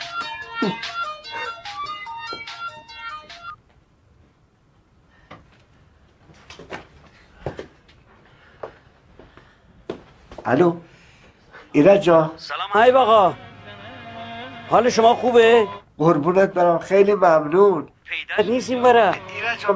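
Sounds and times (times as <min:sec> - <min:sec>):
phone ringing with a bright melodic electronic ringtone: 0:00.0 - 0:03.6
speech: 0:00.6 - 0:01.0, 0:10.5 - 0:10.9, 0:11.7 - 0:13.4, 0:14.7 - 0:19.7.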